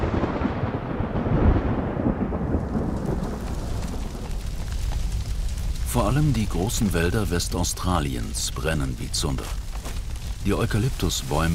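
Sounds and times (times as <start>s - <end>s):
deep rolling thunder of a tropical thunderstorm: 0.0s - 7.2s
steady rain in a tropical thunderstorm: 0.0s - 11.5s
speech: 6.0s - 9.6s, 10.4s - 11.5s.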